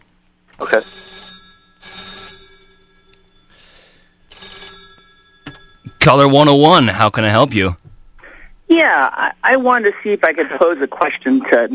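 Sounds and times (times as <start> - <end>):
telephone bell ringing with an incoming call: 0.6 - 7.0
speech: 0.7 - 1.0, 6.0 - 7.8, 8.7 - 11.7.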